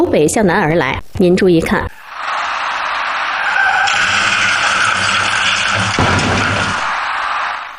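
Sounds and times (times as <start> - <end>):
speech: 0.0 - 2.0
car tire screech: 1.9 - 7.7
rushing road noise: 1.9 - 7.7
car scraping crash into roadside flower boxes: 2.0 - 7.7.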